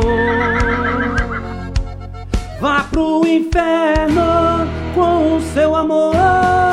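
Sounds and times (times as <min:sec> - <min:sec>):
horse whinnying: 0:00.0 - 0:01.8
instrumental music with regular drum hits: 0:00.0 - 0:06.7
speech: 0:03.0 - 0:04.3.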